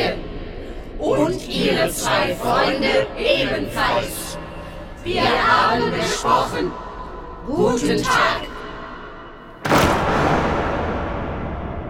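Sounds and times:
speech: 0:01.0 - 0:04.4, 0:05.0 - 0:08.6
several doors slamming shut at once: 0:09.6 - 0:11.8.

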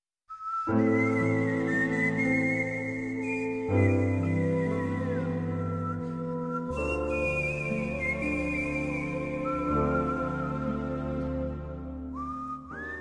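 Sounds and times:
person whistling a melody for a TV crime drama soundtrack: 0:00.3 - 0:11.5, 0:12.1 - 0:12.9
sustained orchestral film score accompaniment: 0:00.9 - 0:12.9.

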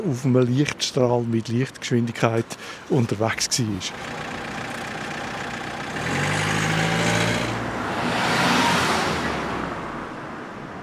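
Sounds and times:
speech: 0:00.0 - 0:04.4
road traffic of cars and trucks rumbling: 0:00.0 - 0:10.8
truck engine idling: 0:03.8 - 0:07.6
vehicle passing: 0:03.9 - 0:10.8.

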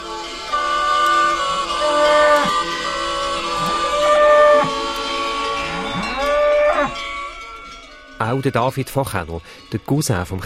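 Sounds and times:
bright metallic cowbells clanking: 0:00.0 - 0:10.4
several cows lowing in a barn: 0:00.3 - 0:07.8
speech: 0:08.3 - 0:10.4.

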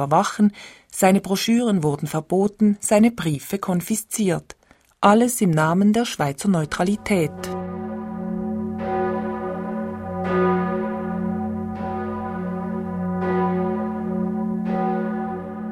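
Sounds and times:
speech: 0:00.0 - 0:07.8
church bells tolling for a funeral: 0:06.5 - 0:15.7.

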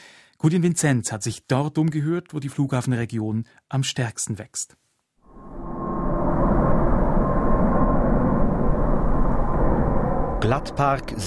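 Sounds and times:
speech: 0:00.4 - 0:04.9, 0:10.4 - 0:11.2
Swiss airliner from Dubai gliding in before landing: 0:05.3 - 0:11.2.

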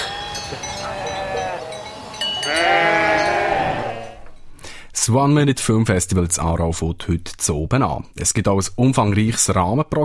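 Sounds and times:
flock of sheep bleating: 0:00.0 - 0:04.3
speech: 0:00.5 - 0:01.1, 0:05.0 - 0:10.0.

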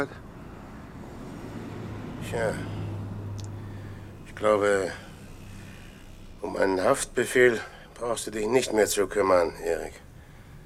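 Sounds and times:
speech: 0:00.0 - 0:00.2, 0:02.2 - 0:02.8, 0:04.4 - 0:05.1, 0:06.4 - 0:10.0
car on a street with engine and road noise: 0:00.0 - 0:07.5.

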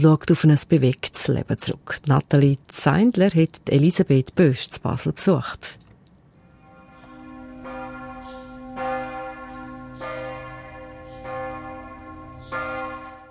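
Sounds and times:
speech: 0:00.0 - 0:05.8
church bells of Catholic parish church in Basel ringing: 0:06.4 - 0:13.2.

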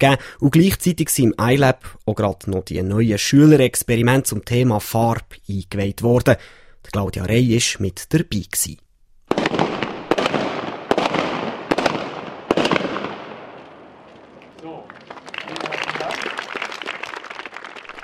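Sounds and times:
speech: 0:00.0 - 0:08.8
loud bangs launching coloured powder into the air at a jubilee celebration: 0:09.3 - 0:14.4
people clapping at a jubilee celebration: 0:14.4 - 0:18.0.

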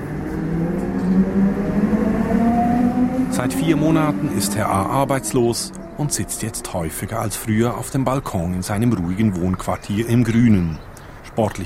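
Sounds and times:
train motor whine climbing in pitch: 0:00.0 - 0:07.2
train pulling away from a small railway station in the Zürcher Unterland, Switzerland: 0:00.0 - 0:09.8
speech: 0:03.4 - 0:11.6.

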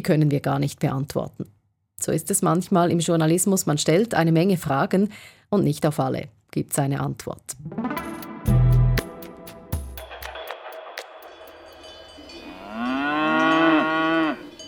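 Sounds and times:
speech: 0:00.0 - 0:08.6
clanking bell-like knocks: 0:10.2 - 0:13.8, 0:14.5 - 0:14.6
cows mooing: 0:12.2 - 0:14.6.

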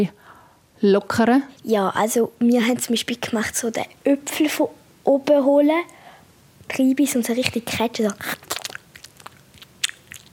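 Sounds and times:
speech: 0:00.0 - 0:00.2, 0:00.8 - 0:06.0, 0:06.7 - 0:08.5
wet mouth smacks and clicks from mimed gum chewing: 0:07.4 - 0:10.3.

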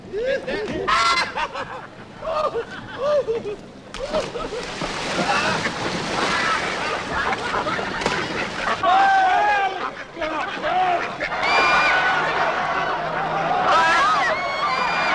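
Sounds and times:
laughter: 0:00.0 - 0:15.1
ducks quacking on a village pond: 0:00.6 - 0:03.0, 0:04.1 - 0:14.3
noisy splashing and churning water on a village pond: 0:03.9 - 0:10.1.

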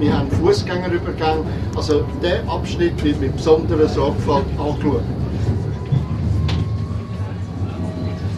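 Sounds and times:
speech: 0:00.0 - 0:05.5
tram rumbling as it rounds a curve into Pfingstweidstrasse: 0:00.0 - 0:08.3.

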